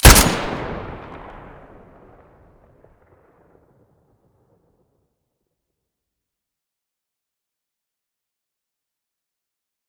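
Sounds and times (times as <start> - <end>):
SVU rifle muzzle: 0.0 - 0.7.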